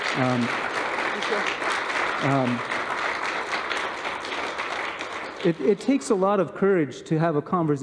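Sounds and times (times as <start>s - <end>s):
audience applause: 0.0s - 6.2s
speech: 0.2s - 0.7s, 1.3s - 2.8s, 5.4s - 7.8s.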